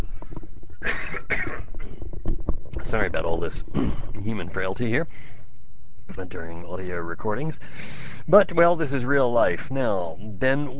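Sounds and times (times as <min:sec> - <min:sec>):
low hum: 0:00.0 - 0:10.7
person coughing: 0:00.8 - 0:01.9, 0:03.7 - 0:04.2
speech: 0:02.9 - 0:05.4, 0:06.1 - 0:10.7.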